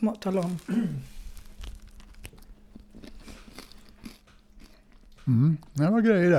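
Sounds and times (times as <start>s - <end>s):
speech: 0.0s - 1.1s, 5.3s - 6.3s
chewing bread: 1.1s - 5.9s
biting into crusty bread: 1.3s - 5.8s.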